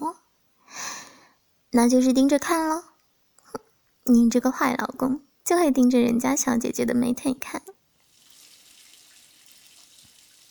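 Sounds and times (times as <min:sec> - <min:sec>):
speech: 0:01.7 - 0:02.8, 0:04.1 - 0:07.8
shower running in a bathroom: 0:08.0 - 0:10.5.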